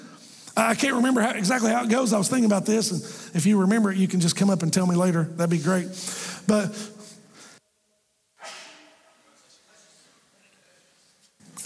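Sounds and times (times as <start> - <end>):
speech: 0.6 - 7.0
faint room murmur: 7.6 - 11.6
audience member sneezing: 8.4 - 9.1.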